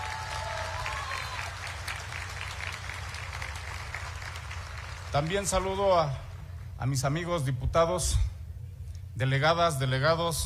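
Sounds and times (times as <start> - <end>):
large audience applauding a university rector: 0.0 - 5.9
speech: 5.1 - 8.3, 9.2 - 10.4.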